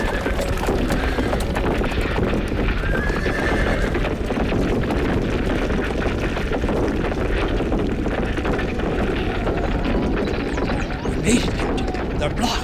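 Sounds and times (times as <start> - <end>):
horse whinnying: 0.0 - 1.6, 2.8 - 4.2
loud clatter of horse hooves: 0.0 - 12.6.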